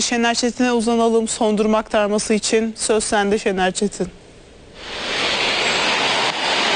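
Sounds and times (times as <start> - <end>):
speech: 0.0 - 4.2
heavy downpour of rain over the capital city: 4.8 - 6.7.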